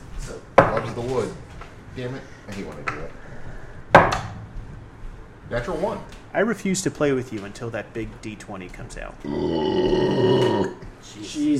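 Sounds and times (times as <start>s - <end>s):
speech: 0.3s - 3.5s, 5.5s - 11.5s
short vocal sound: 9.2s - 10.8s
loud burp against the microphone: 9.2s - 10.9s.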